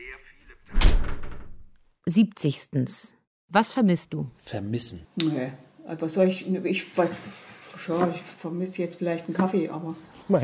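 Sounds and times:
door being closed with heavy thump: 0:00.7 - 0:01.7
speech: 0:02.1 - 0:10.4.

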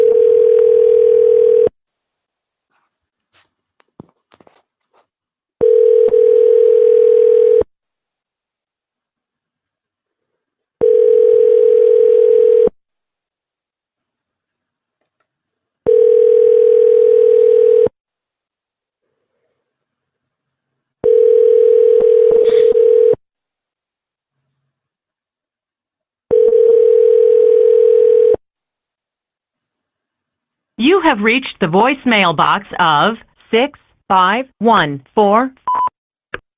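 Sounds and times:
telephone ringing tones on a call to a locksmith: 0:00.0 - 0:01.7, 0:05.6 - 0:07.7, 0:10.8 - 0:12.8, 0:15.9 - 0:17.9, 0:21.0 - 0:23.2, 0:26.3 - 0:28.4
speech: 0:31.1 - 0:35.7.

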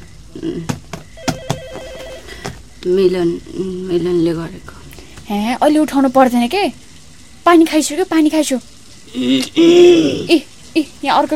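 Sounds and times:
speech: 0:00.4 - 0:00.8, 0:02.8 - 0:06.8, 0:07.4 - 0:11.3
warbling electronic telephone ring tone in a radio drama: 0:01.2 - 0:02.3.

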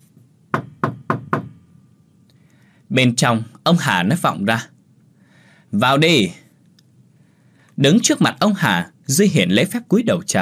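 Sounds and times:
sharp knocks on a door from outside: 0:00.5 - 0:01.6
speech: 0:02.9 - 0:04.8, 0:05.7 - 0:06.4, 0:07.8 - 0:10.4.

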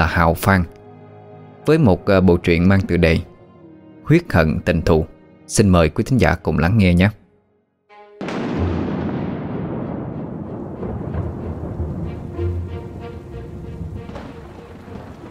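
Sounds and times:
speech: 0:00.0 - 0:00.8, 0:01.6 - 0:03.3, 0:04.1 - 0:07.2
loud thunder crack with rolling rumble: 0:08.2 - 0:15.3
strong wind in a night thunderstorm: 0:08.8 - 0:15.3
heavy rain beating on leaf roofs: 0:10.8 - 0:15.3.

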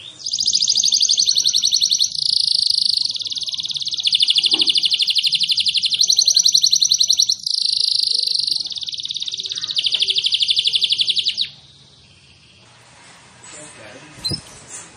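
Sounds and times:
canary singing long unbroken rolls of dense high trills: 0:00.0 - 0:12.6.

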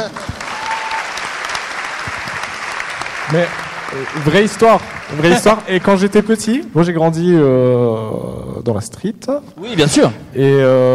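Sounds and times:
applause from a live audience: 0:00.0 - 0:06.7
speech: 0:03.3 - 0:10.9.

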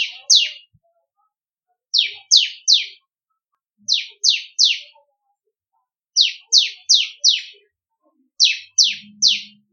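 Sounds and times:
bar-winged prinia singing down-slurred high chips: 0:00.0 - 0:01.3, 0:01.9 - 0:03.1, 0:03.8 - 0:05.3, 0:06.1 - 0:09.7.

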